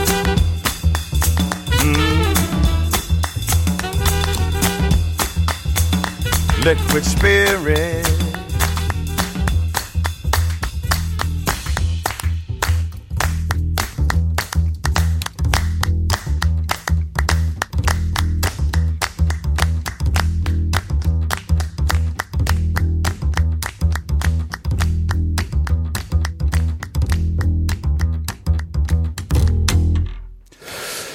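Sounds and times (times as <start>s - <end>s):
sharp handclaps beating out a steady rhythm: 0.0s - 29.8s
deep driving bassline: 0.0s - 30.1s
soul-jazz vocal song: 1.7s - 2.9s, 6.4s - 8.9s
speech: 6.6s - 8.1s.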